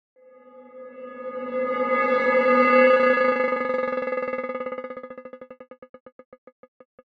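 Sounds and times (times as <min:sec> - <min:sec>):
percussive sound from granulation of a source sound: 0:01.1 - 0:07.1.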